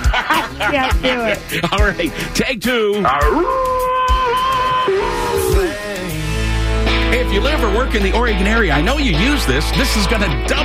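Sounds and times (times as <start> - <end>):
laughter: 0.0 - 2.2
speech: 0.7 - 3.9, 7.1 - 10.6
person imitating a wolf howl: 3.0 - 6.2.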